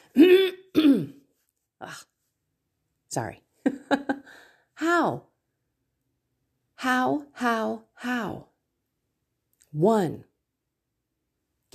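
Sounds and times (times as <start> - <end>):
throat clearing of phlegm: 0.2 - 1.2
speech: 3.1 - 4.1, 4.8 - 5.3, 6.8 - 8.5, 9.7 - 10.3.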